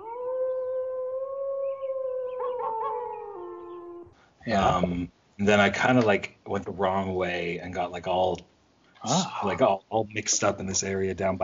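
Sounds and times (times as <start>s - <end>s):
wolves howling: 0.0s - 4.1s
speech: 4.4s - 11.4s.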